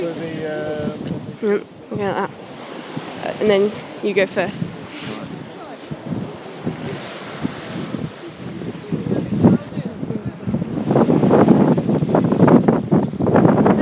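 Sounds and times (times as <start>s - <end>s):
faint indistinct murmuring voices: 0.0s - 10.8s
gusty seaside wind on a sunny day buffeting the microphone: 0.0s - 13.8s
speech: 1.4s - 2.4s, 3.2s - 5.1s.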